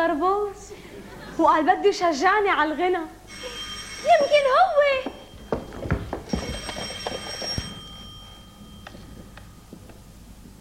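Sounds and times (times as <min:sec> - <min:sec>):
speech: 0:00.1 - 0:05.2
faint telephone ringing with a thin electronic tone: 0:03.2 - 0:10.5.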